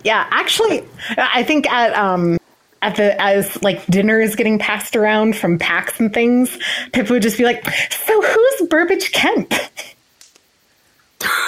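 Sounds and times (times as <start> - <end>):
speech: 0.0 - 9.9
faint breaths: 0.9 - 1.2, 6.5 - 7.0.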